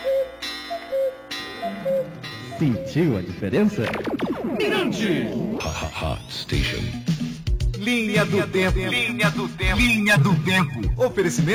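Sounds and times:
electronic alarm clock beeping: 0.0s - 5.0s
speech: 2.6s - 7.1s, 7.8s - 11.5s.

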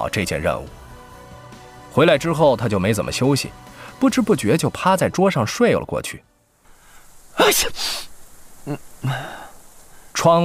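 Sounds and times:
speech: 0.0s - 0.8s, 2.0s - 6.3s, 7.4s - 9.4s, 10.2s - 10.4s
soft vocal sounds: 7.1s - 10.4s
person sneezing: 7.4s - 8.1s.

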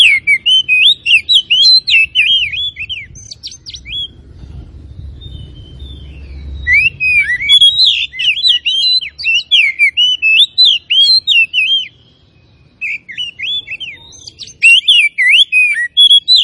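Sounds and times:
Oriental magpie-robin of the Tretes variety singing vigorously: 0.0s - 16.4s
low rumble: 3.0s - 7.1s.

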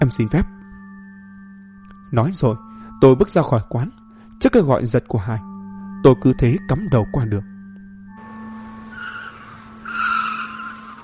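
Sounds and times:
speech: 0.0s - 0.6s, 2.1s - 7.5s
car tires screeching as a car brakes suddenly: 8.2s - 11.0s.

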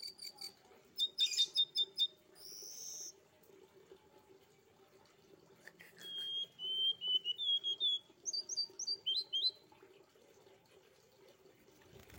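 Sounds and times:
streaked spiderhunter song with sharp chirps, buzzy note and whistle: 1.0s - 3.1s, 6.0s - 9.6s.

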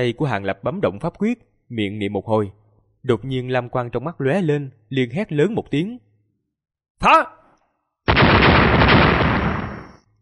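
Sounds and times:
speech: 0.0s - 6.1s, 7.0s - 7.4s
loud explosion sound effect: 8.1s - 10.0s.

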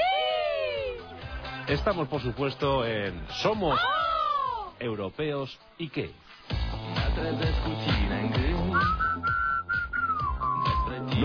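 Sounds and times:
rhythmic instrumental backing: 0.0s - 4.8s, 5.6s - 11.2s
speech: 1.7s - 4.1s, 4.8s - 6.5s, 7.2s - 8.5s
whistled song melody: 8.5s - 11.2s.

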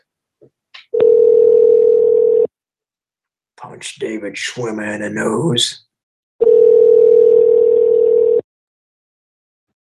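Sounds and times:
telephone dial tone: 1.0s - 2.5s, 6.4s - 8.4s
speech: 3.8s - 5.9s.

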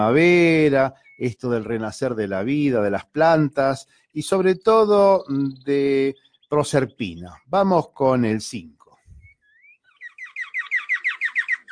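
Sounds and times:
small bird chirping in spring: 0.0s - 2.0s, 3.4s - 7.6s, 9.0s - 11.7s
speech: 0.0s - 8.8s.

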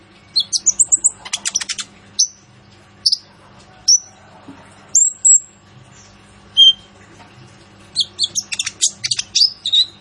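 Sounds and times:
sunbird singing: 0.2s - 2.4s, 5.0s - 6.9s, 8.0s - 9.9s.

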